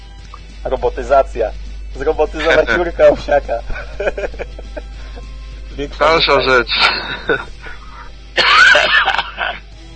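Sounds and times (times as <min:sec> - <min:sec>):
speech: 0:00.6 - 0:05.2, 0:05.8 - 0:07.6
laughter: 0:02.3 - 0:05.3, 0:06.2 - 0:09.6
breathy noise: 0:06.7 - 0:08.2
harsh cough: 0:06.7 - 0:09.6.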